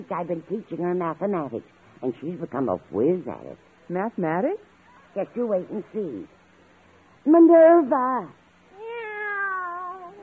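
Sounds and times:
speech: 0.0 - 6.4, 7.2 - 8.4
household cat meowing: 8.7 - 10.2.

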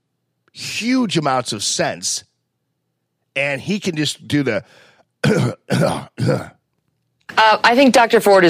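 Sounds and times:
speech: 0.8 - 2.3, 3.4 - 6.6, 7.4 - 8.4
throat clearing: 5.2 - 6.6.

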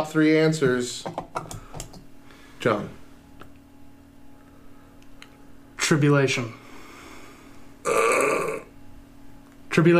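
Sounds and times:
speech: 0.0 - 1.6, 2.6 - 3.0, 5.9 - 6.6, 9.8 - 9.9
loud voiced burp: 7.8 - 8.7.

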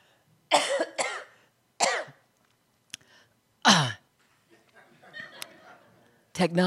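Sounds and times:
harsh coughing: 0.5 - 2.2
laughter: 4.5 - 6.2.

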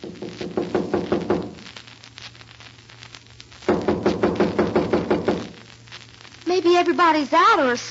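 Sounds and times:
knocking on a door: 0.0 - 1.6, 3.7 - 5.4
speech: 6.6 - 7.8.

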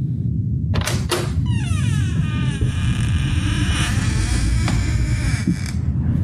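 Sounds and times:
low rumble: 0.0 - 6.2
door latch clicks: 0.8 - 1.4
door creaking open: 0.8 - 6.0.

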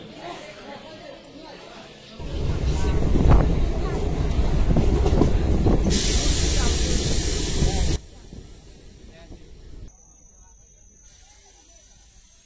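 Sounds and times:
moving passenger train in India rumbling and rattling: 2.2 - 9.9
bright hiss: 5.6 - 9.9, 11.0 - 12.4.

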